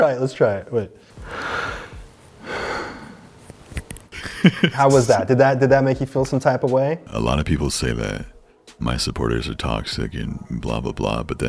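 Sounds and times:
speech: 0.0s - 1.5s, 4.4s - 11.4s
heavy exaggerated breathing: 1.0s - 3.3s
short sniffs and puffs: 1.1s - 3.9s
laughter: 4.1s - 5.1s.

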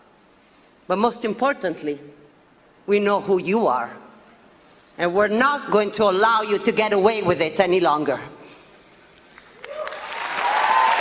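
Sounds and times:
speech: 0.9s - 2.2s, 2.9s - 4.0s, 5.0s - 8.3s
audience applause after a speech at the Cannes film festival: 9.6s - 10.9s.

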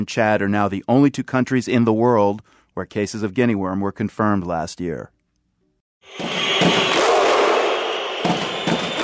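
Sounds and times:
speech: 0.0s - 5.2s, 6.0s - 6.8s
large stadium crowd of soccer fans roaring: 6.2s - 9.0s
soccer fans clapping and shouting in unison: 6.6s - 9.0s.

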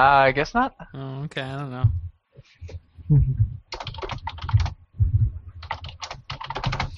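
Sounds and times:
speech: 0.0s - 2.0s, 2.7s - 3.4s
loud rapid typing on a computer keyboard: 3.7s - 4.8s, 5.6s - 6.9s.

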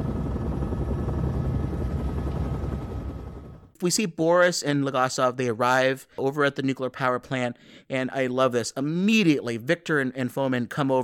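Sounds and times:
helicopter flying toward a nuclear power plant: 0.0s - 3.7s
speech: 3.8s - 11.0s.

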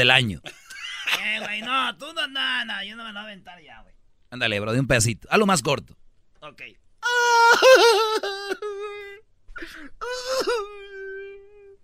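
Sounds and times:
speech: 0.0s - 0.6s, 1.2s - 9.0s, 9.6s - 10.9s
man imitating a woman crying and wailing: 7.0s - 11.8s
man's gasping breath: 9.5s - 10.4s.

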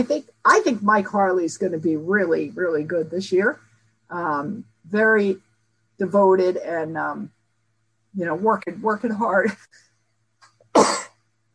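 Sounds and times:
speech: 0.0s - 7.4s, 8.2s - 9.9s
person sneezing: 10.8s - 11.2s.

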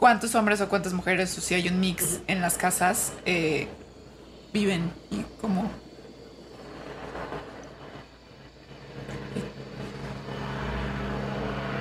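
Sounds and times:
speech: 0.0s - 3.8s, 4.5s - 5.8s
helicopter droning overhead: 3.0s - 11.7s.

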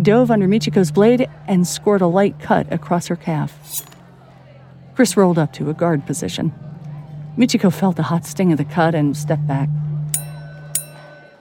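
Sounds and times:
speech: 0.0s - 4.0s, 5.0s - 6.7s, 7.4s - 9.9s
bell dinging marking the end of a sword duel: 10.2s - 11.3s.

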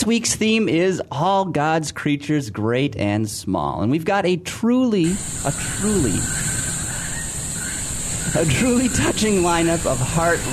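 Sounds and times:
speech: 0.0s - 6.6s, 8.4s - 10.5s
voice making sliding, warbling noises: 5.0s - 7.1s, 8.3s - 10.5s
air leak hissing: 5.0s - 10.5s.

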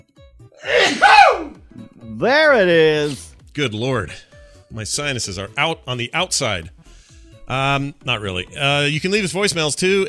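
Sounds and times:
person sneezing: 0.6s - 1.5s
speech: 2.1s - 6.8s, 7.5s - 10.0s.

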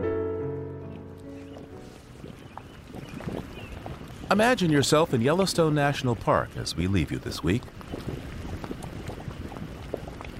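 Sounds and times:
mud bubbling in a paint pot at Yellowstone's caldera: 1.2s - 10.3s
speech: 4.3s - 7.8s.

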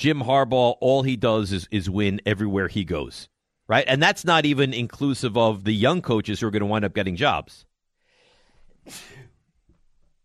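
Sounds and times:
speech: 0.0s - 7.7s, 8.8s - 9.2s
soft breathing: 8.0s - 9.0s
sharp sneeze: 8.8s - 9.4s.

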